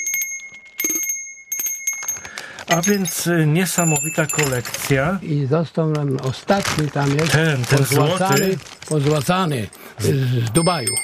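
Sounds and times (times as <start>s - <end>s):
very small collection bell ringing: 0.0s - 5.1s, 8.0s - 8.6s, 10.0s - 11.0s
speech: 2.7s - 11.0s.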